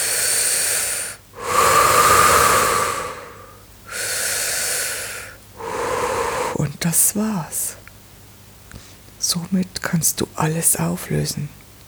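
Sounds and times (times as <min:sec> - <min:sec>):
slow deep breathing into the belly: 0:00.0 - 0:06.6
speech: 0:06.6 - 0:07.8, 0:09.3 - 0:11.6.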